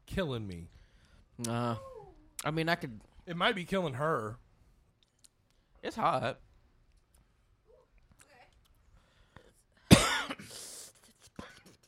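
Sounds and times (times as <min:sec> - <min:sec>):
speech: 0:00.2 - 0:00.8, 0:01.4 - 0:04.4, 0:05.8 - 0:06.5
person coughing after inhaling spicy food: 0:09.9 - 0:10.8.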